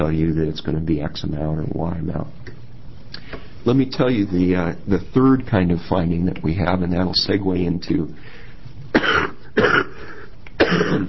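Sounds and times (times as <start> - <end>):
speech: 0.0 - 2.5, 3.6 - 9.2
person coughing harshly during a formal committee meeting: 8.9 - 11.0.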